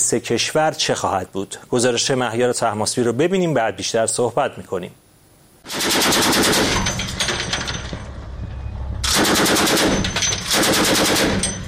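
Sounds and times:
speech: 0.1 - 5.1, 5.8 - 6.9
rapid automatic gunfire from heavy naval guns on a warship: 5.7 - 7.7, 9.0 - 11.6.

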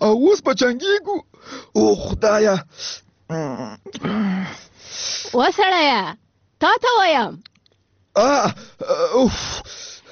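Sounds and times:
speech: 0.0 - 7.5, 8.2 - 9.9
person crying out in their sleep from a nightmare: 3.3 - 4.5, 8.2 - 9.7.

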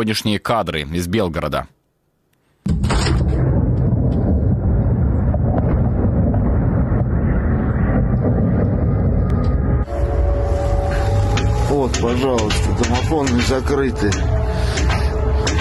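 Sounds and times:
speech: 0.0 - 1.8, 11.8 - 14.8
loud explosion blast during missile and drone attack: 2.7 - 13.4
sustained heavy roar and rumble after explosion: 2.7 - 15.6
steady tonal wail: 3.9 - 15.6.

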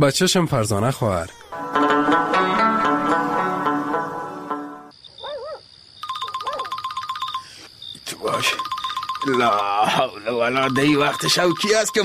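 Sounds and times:
speech: 0.0 - 2.2, 9.2 - 12.0
music: 1.5 - 4.9
phone ringtone with rapid electronic trill: 6.0 - 7.7, 8.3 - 12.0.

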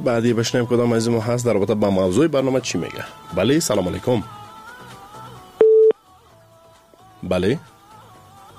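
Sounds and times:
speech: 0.0 - 4.4, 7.2 - 7.7
soft music: 0.0 - 8.5
electronic telephone tone as a call fails to connect: 5.6 - 6.0.

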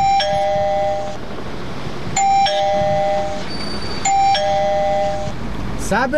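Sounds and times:
electronic two-tone ding-dong doorbell chime: 0.0 - 1.2, 2.2 - 3.4, 4.1 - 5.3.

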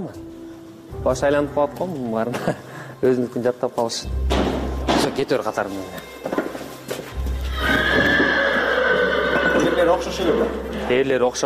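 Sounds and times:
speech: 0.0 - 0.3, 0.9 - 6.2, 9.7 - 11.4
horse neighing among horses gathered at one spot: 7.4 - 10.9.

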